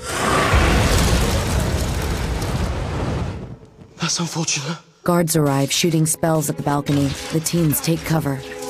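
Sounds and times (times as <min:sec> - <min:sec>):
dragon blasting fire: 0:00.0 - 0:03.6
speech: 0:04.1 - 0:08.6.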